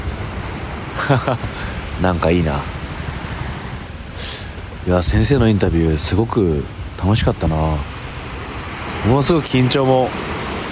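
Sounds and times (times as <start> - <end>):
low rumble of surf: 0.0 - 10.7
waves washing onto a beach: 0.0 - 10.7
laughter: 1.0 - 1.6
speech: 1.0 - 2.8, 4.8 - 7.9, 9.0 - 10.3
brief brighter hiss of breaking water: 4.1 - 4.6.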